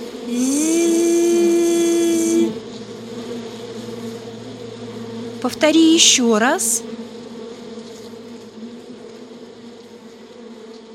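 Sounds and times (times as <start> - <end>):
voice imitating a mosquito's buzzing: 0.0 - 3.1, 5.4 - 6.9
speech: 5.4 - 7.0.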